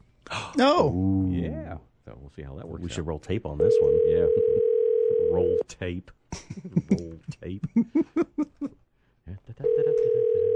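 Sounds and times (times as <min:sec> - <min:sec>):
speech: 0:00.6 - 0:04.7, 0:05.3 - 0:08.8
telephone dial tone: 0:03.7 - 0:05.3, 0:09.8 - 0:10.5.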